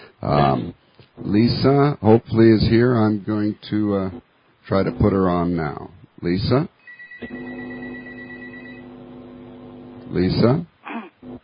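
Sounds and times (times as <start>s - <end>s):
speech: 0.2s - 7.6s, 10.1s - 11.4s
telephone ringing: 6.8s - 9.2s.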